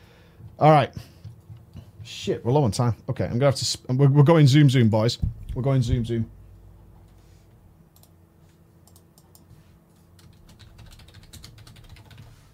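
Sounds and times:
steady low hum: 0:00.0 - 0:12.5
speech: 0:00.6 - 0:01.1, 0:02.1 - 0:06.4
typing on a computer keyboard: 0:10.2 - 0:12.3.

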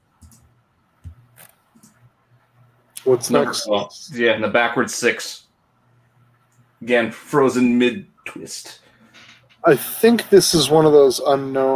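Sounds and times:
soft mouse clicks clicking through slides: 0:00.1 - 0:02.1
speech: 0:03.0 - 0:05.4, 0:06.8 - 0:08.8, 0:09.6 - 0:11.7.

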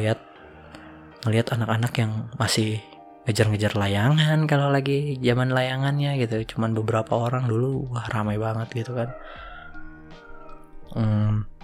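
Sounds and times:
speech: 0:00.0 - 0:00.3, 0:01.2 - 0:09.5, 0:10.9 - 0:11.5
rooster crowing: 0:00.2 - 0:01.2, 0:08.8 - 0:10.8.

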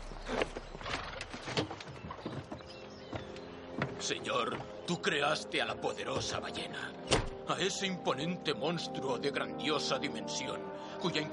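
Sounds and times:
horse hooves clopping pulling a carriage: 0:00.0 - 0:06.6
rustling rumbling background: 0:00.0 - 0:07.4
soft knocking steps: 0:00.4 - 0:04.9
speech: 0:04.0 - 0:11.3.

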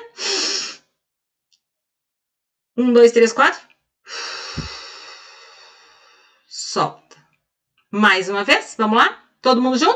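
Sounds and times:
speech: 0:02.8 - 0:04.7, 0:06.8 - 0:07.0, 0:07.9 - 0:09.9
deep inhale in a breathing exercise: 0:04.1 - 0:06.5.

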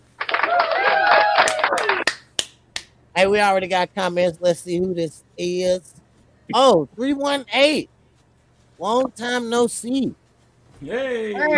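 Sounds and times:
crowd applause with hands clapping: 0:00.1 - 0:02.2
loud cheering voices: 0:00.2 - 0:02.1
speech: 0:03.2 - 0:07.9, 0:08.8 - 0:10.2, 0:10.8 - 0:11.5.

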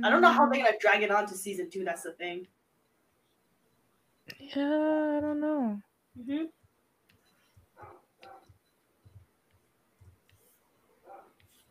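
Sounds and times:
speech: 0:00.0 - 0:02.6, 0:04.3 - 0:06.6
faint low background noise: 0:00.0 - 0:11.7
dog barking: 0:07.8 - 0:08.6, 0:11.0 - 0:11.4.

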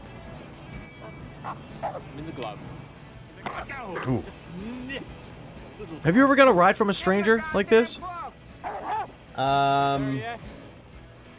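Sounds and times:
dog barking: 0:01.0 - 0:02.2, 0:08.6 - 0:09.2
speech: 0:01.4 - 0:05.2, 0:05.8 - 0:08.2, 0:09.4 - 0:10.6.

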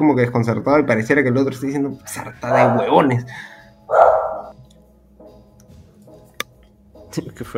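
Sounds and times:
speech: 0:00.0 - 0:04.2, 0:07.2 - 0:07.5
small dog barking and yipping: 0:02.5 - 0:03.1, 0:03.9 - 0:04.5.

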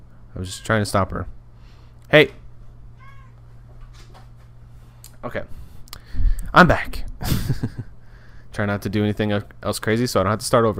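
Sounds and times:
steady low electrical hum: 0:00.0 - 0:10.7
speech: 0:00.4 - 0:01.4, 0:02.1 - 0:02.4, 0:05.2 - 0:05.6, 0:06.5 - 0:07.7, 0:08.6 - 0:10.7
cat giving a brief high meow: 0:03.0 - 0:03.4
laughter: 0:07.2 - 0:07.9.

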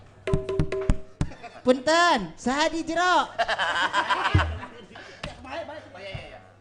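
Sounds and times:
knocking on a door: 0:00.3 - 0:01.3, 0:04.3 - 0:04.7
laughter: 0:01.2 - 0:01.7, 0:03.3 - 0:05.3
speech: 0:01.6 - 0:04.5.

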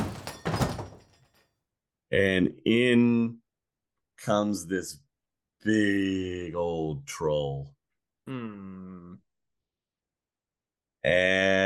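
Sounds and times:
door being kicked open with a heavy booming crash: 0:00.0 - 0:01.2
speech: 0:02.1 - 0:03.4, 0:04.2 - 0:05.0, 0:05.6 - 0:09.2, 0:11.0 - 0:11.6.

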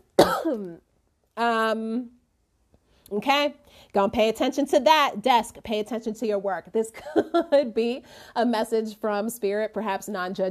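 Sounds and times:
harsh cough: 0:00.2 - 0:00.8
voiced throat-clearing rumble: 0:00.2 - 0:00.8
speech: 0:00.2 - 0:02.2, 0:03.1 - 0:10.5.

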